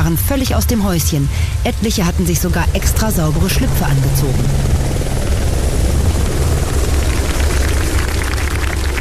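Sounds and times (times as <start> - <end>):
speech: 0.1 - 4.8
government flight-readiness helicopter landing on a sports field: 1.6 - 8.9.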